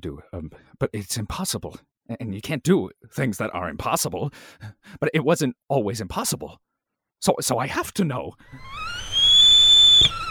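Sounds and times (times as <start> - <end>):
speech: 0.0 - 9.1
stovetop kettle whistling: 8.5 - 10.2.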